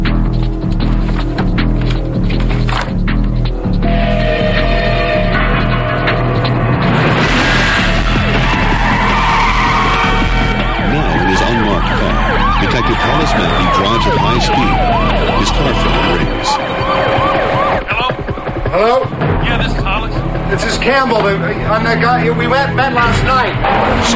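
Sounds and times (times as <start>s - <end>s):
police car engines roaring: 0.1s - 24.1s
several police car sirens wailing: 0.5s - 19.2s
police car tires screeching on a street: 3.9s - 18.5s, 23.1s - 24.1s
speech: 21.0s - 24.1s.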